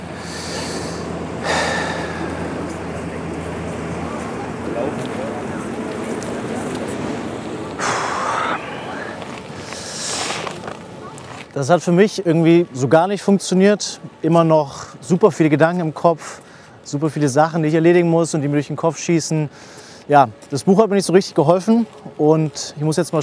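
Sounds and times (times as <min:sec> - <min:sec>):
deep breathing during a relaxation exercise: 0:00.0 - 0:02.8, 0:07.8 - 0:10.5
speech: 0:04.8 - 0:05.3, 0:11.6 - 0:23.2.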